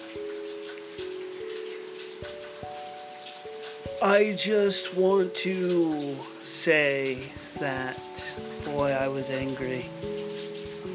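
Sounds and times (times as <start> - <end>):
steady rain pattering outdoors on a balcony: 0.0 - 10.9
speech: 4.0 - 10.1.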